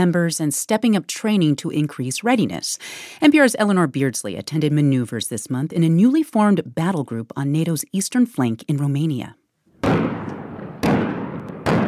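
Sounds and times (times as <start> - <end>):
speech: 0.0 - 9.4
artillery salvos firing during military exercises: 9.8 - 11.8.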